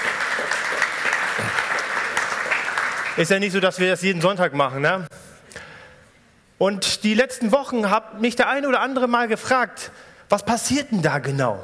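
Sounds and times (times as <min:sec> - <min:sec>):
audience applause at a summer festival gathering: 0:00.0 - 0:03.4
speech: 0:03.2 - 0:05.2, 0:06.6 - 0:11.6.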